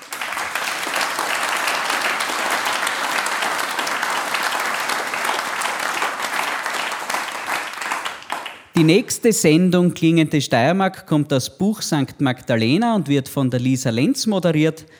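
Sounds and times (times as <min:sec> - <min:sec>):
audience applause: 0:00.0 - 0:09.0
speech: 0:08.8 - 0:14.9.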